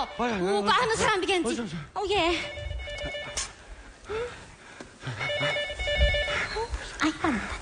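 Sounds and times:
people talking and reacting with hurried voices: 0:00.0 - 0:02.7
speech: 0:00.1 - 0:03.5, 0:07.0 - 0:07.6
telephone ringing in electronic bursts: 0:02.4 - 0:03.6, 0:05.2 - 0:06.5.

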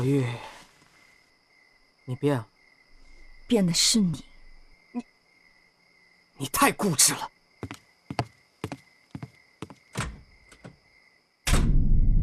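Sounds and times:
speech: 0:00.0 - 0:00.5, 0:02.1 - 0:02.5, 0:03.5 - 0:04.3, 0:06.4 - 0:08.3
door slamming shut: 0:09.9 - 0:10.8, 0:11.4 - 0:12.1.

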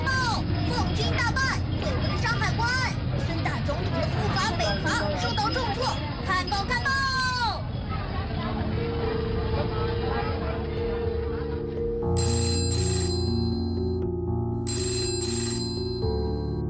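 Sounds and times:
indistinct murmur: 0:00.0 - 0:13.7
telephone ringing in long trilling bursts: 0:12.0 - 0:14.0, 0:14.6 - 0:16.6.

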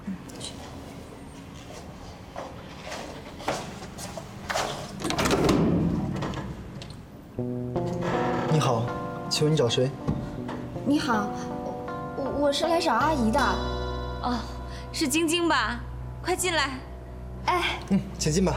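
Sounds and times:
footsteps: 0:00.3 - 0:05.0
door opening: 0:04.4 - 0:07.1, 0:07.8 - 0:09.1
speech: 0:09.4 - 0:10.2, 0:10.9 - 0:11.6, 0:12.4 - 0:16.9, 0:17.5 - 0:18.5.

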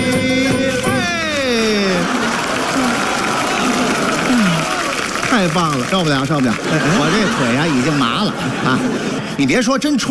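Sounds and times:
crowd applauding loudly: 0:00.0 - 0:09.2
laughter: 0:00.0 - 0:10.1
whoops and cheering voices: 0:01.0 - 0:05.2
speech: 0:05.5 - 0:10.1.

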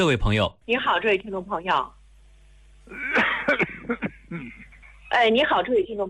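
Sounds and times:
speech: 0:00.0 - 0:02.0, 0:02.9 - 0:06.0
elderly person coughing over a radio hotline phone line: 0:02.9 - 0:04.7.

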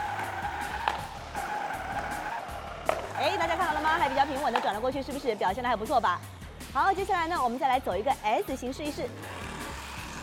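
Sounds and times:
remote-controlled model car motor whirring while driving and turning: 0:00.0 - 0:04.6, 0:09.1 - 0:10.2
faint model car tire squeak: 0:00.0 - 0:04.8, 0:09.1 - 0:10.2
speech: 0:04.0 - 0:09.3.

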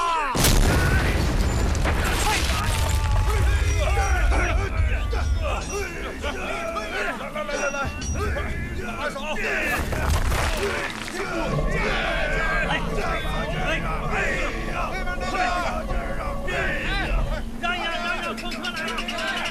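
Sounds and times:
blasting explosion in a mine quarry: 0:00.4 - 0:06.4, 0:09.7 - 0:14.7
people calling out: 0:02.2 - 0:19.4.

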